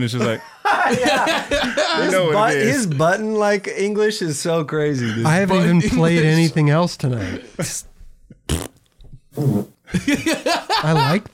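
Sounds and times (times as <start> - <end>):
speech: 0.0 - 7.9, 9.4 - 11.3
laughter: 0.1 - 3.0, 5.0 - 7.8, 9.9 - 11.3
loud brassy fart sound effects: 8.5 - 9.8.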